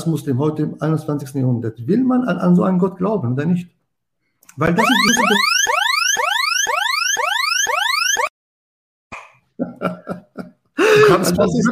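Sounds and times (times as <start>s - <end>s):
speech: 0.0s - 3.8s, 4.6s - 5.8s, 9.8s - 10.2s, 11.2s - 11.7s
laughter: 4.8s - 5.5s, 9.6s - 11.7s
electronic alarm whooping in rising sweeps: 4.8s - 8.3s.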